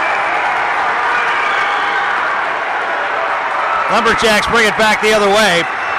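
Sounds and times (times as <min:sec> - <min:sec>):
arena crowd cheering and applauding after a basketball dunk: 0:00.0 - 0:05.9
speech: 0:03.9 - 0:05.8.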